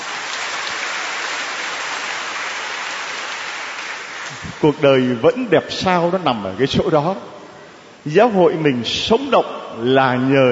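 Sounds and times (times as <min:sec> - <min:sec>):
crowd clapping: 0:00.0 - 0:04.6
speech: 0:04.3 - 0:07.3, 0:08.0 - 0:10.5.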